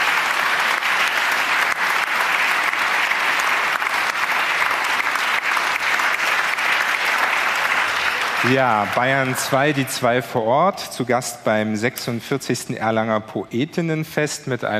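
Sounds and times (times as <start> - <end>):
sustained applause from a sizable audience: 0.0 - 10.8
speech: 8.4 - 14.7.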